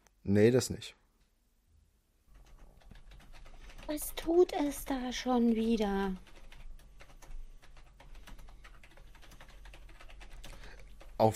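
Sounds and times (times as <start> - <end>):
speech: 0.2 - 1.0, 3.9 - 6.3
typing on a computer keyboard: 2.3 - 11.3.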